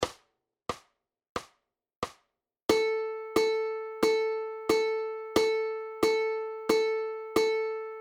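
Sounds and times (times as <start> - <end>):
ukulele playing quarter notes: 2.7 - 8.0.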